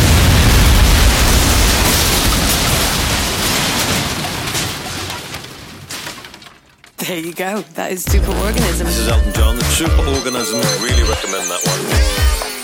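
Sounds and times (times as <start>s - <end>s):
loud explosion: 0.0s - 5.1s
speech: 7.1s - 12.2s.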